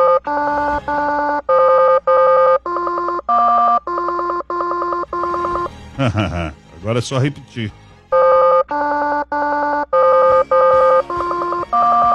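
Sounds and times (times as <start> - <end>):
telephone tones after a call is placed: 0.0 - 5.7, 8.1 - 12.1
laughter: 5.4 - 7.0
speech: 6.0 - 7.8.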